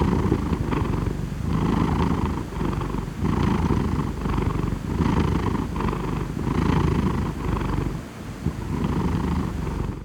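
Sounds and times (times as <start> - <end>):
cat purring: 0.0 - 10.0.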